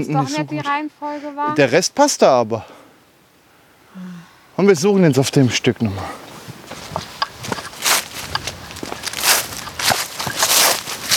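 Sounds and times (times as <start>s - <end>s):
speech: 0.0s - 2.8s, 4.0s - 6.2s
footsteps of people walking on the forest floor through woodland: 6.3s - 11.1s.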